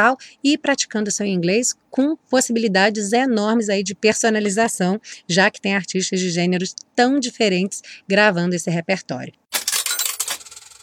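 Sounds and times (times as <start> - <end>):
speech: 0.0 - 9.4
handful of coins clattering into a tip jar: 9.5 - 10.8.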